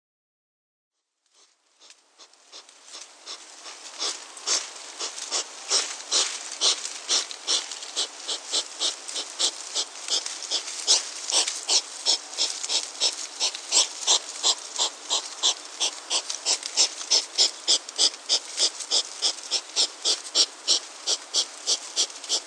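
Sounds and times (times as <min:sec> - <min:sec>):
European hedgehog Erinaceus europaeus: 0:01.3 - 0:22.4.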